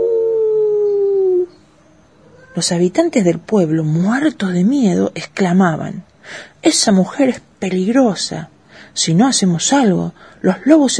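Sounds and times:
wolves howling under a window at night: 0.0s - 1.6s
speech: 2.6s - 10.9s.

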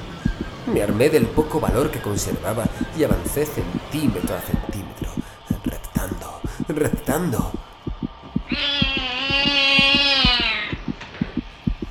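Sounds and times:
thumping heartbeat: 0.2s - 11.9s
speech: 0.7s - 5.1s, 6.0s - 7.6s, 8.5s - 8.8s
cat meowing: 8.5s - 10.8s.

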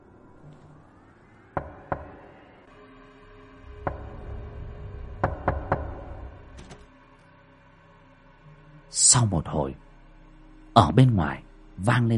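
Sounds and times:
knocking on a bedroom door: 1.6s - 2.3s, 3.8s - 4.4s, 5.2s - 6.4s
speech: 9.0s - 9.8s, 10.8s - 12.1s.

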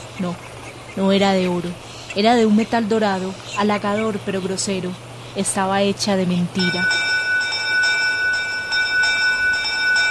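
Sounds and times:
speech: 0.2s - 7.0s
small bell ringing: 6.6s - 10.0s.

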